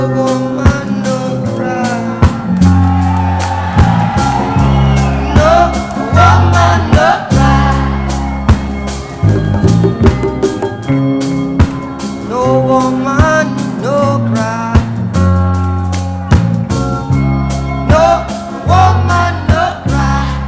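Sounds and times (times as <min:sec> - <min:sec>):
person singing over a reggae groove: 0:00.0 - 0:03.1, 0:04.2 - 0:11.0, 0:11.8 - 0:15.0, 0:17.6 - 0:20.4
reggae organ: 0:00.0 - 0:20.4
steady reggae bass line: 0:00.0 - 0:20.4
offbeat reggae guitar chops: 0:00.1 - 0:20.2.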